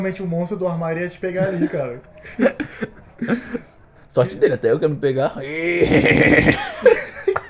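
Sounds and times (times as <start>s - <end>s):
speech: 0.0s - 6.9s
laughter: 1.2s - 4.4s, 6.0s - 7.4s
horse neighing: 5.4s - 6.7s
horse snorting: 5.8s - 6.6s.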